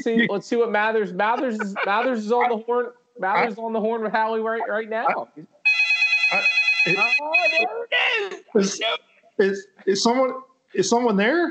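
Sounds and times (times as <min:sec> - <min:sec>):
laughter: 0:00.0 - 0:04.7
speech: 0:00.0 - 0:05.5, 0:06.3 - 0:11.5
telephone ringing with a bright electronic tone: 0:05.7 - 0:07.8.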